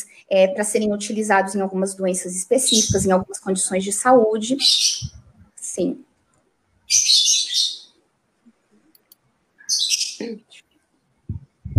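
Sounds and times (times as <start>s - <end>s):
speech: 0.0s - 5.2s, 5.8s - 6.1s
small bird from Guarulhos chirping: 2.6s - 3.2s, 4.5s - 5.5s, 6.9s - 8.0s, 9.0s - 10.6s.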